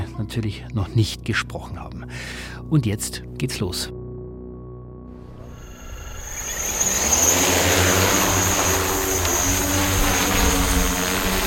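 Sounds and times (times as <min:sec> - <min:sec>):
speech: 0:00.2 - 0:04.0
drones taking off with a whirring buzz: 0:05.2 - 0:11.4.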